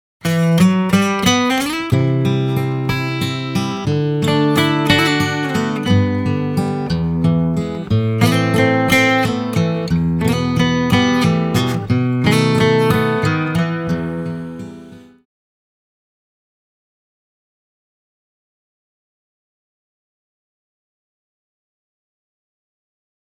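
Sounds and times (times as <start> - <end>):
simple guitar piece: 0.2 - 15.3.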